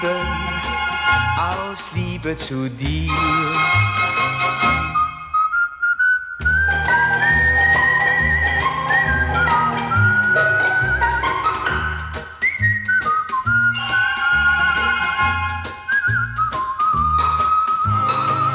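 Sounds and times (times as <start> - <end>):
steady instrumental accompaniment: 0.0 - 5.4, 6.4 - 18.5
speech: 1.4 - 4.5
person whistling a lilting tune: 2.9 - 3.9, 4.8 - 18.5.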